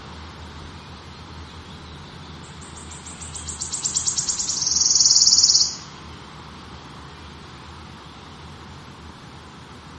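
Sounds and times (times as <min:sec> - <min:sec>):
low background hum: 0:00.0 - 0:09.9
wood warbler song: 0:00.6 - 0:06.3.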